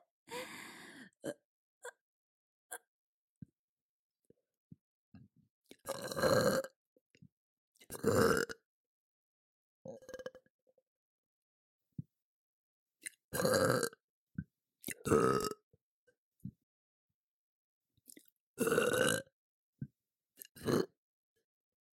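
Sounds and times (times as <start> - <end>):
loud drawn-out deep rumbling burps: 5.8 - 6.8, 7.9 - 8.6, 9.9 - 10.4, 13.4 - 14.0, 15.0 - 15.6, 18.6 - 19.3, 20.6 - 20.9.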